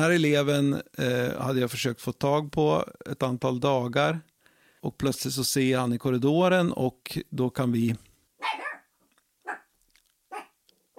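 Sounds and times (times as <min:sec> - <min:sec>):
speech: 0:00.0 - 0:08.6
small dog barking: 0:08.4 - 0:09.7, 0:10.3 - 0:10.9.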